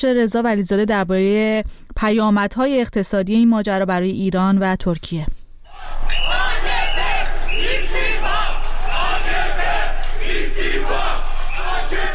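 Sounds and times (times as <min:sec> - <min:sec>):
speech: 0:00.0 - 0:06.0
anti-government protesters chanting loudly in an Istanbul street: 0:05.7 - 0:12.1.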